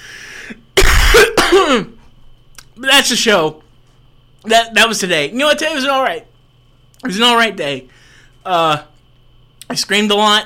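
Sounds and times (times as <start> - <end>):
throat clearing from a dry throat: 0.8 - 1.9
person with a dry throat coughing harshly: 0.8 - 2.0
speech: 1.5 - 2.0, 2.8 - 3.6, 4.4 - 6.3, 7.0 - 8.9, 9.7 - 10.4.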